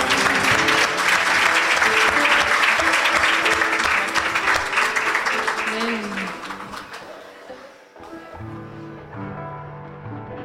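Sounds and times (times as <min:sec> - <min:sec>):
congregation applause at a church worship service: 0:00.0 - 0:07.6.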